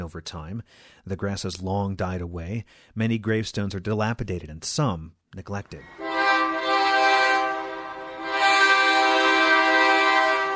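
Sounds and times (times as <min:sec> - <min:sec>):
speech: 0:00.0 - 0:06.2
freight train horn passing a cemetery in Denver: 0:05.8 - 0:10.5.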